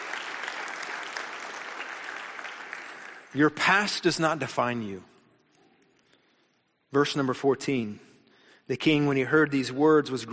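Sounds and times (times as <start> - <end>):
church congregation applauding: 0.0 - 3.8
speech: 3.3 - 5.1, 6.9 - 8.1, 8.7 - 10.3.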